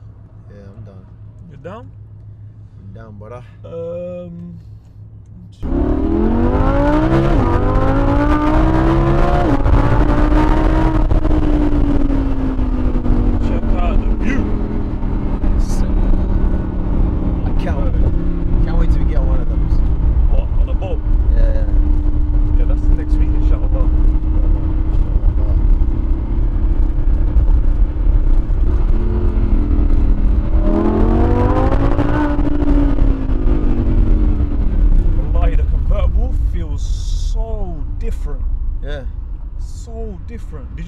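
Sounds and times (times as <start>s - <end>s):
wind and road noise: 0.0s - 40.8s
speech: 0.9s - 2.0s, 2.9s - 4.8s, 5.5s - 6.7s
convertible car engine accelerating with the top down: 4.6s - 40.8s.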